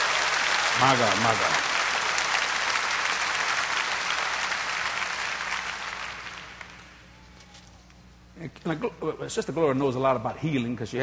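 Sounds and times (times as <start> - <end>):
crowd applause during a sermon: 0.0 - 7.2
speech: 0.8 - 1.8, 8.4 - 11.0.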